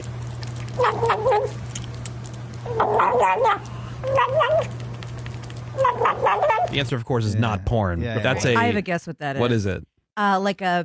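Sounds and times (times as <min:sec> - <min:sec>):
kitten gobbling food with warbling growl-like noises: 0:00.2 - 0:06.7
speech: 0:02.7 - 0:04.8, 0:05.8 - 0:10.8.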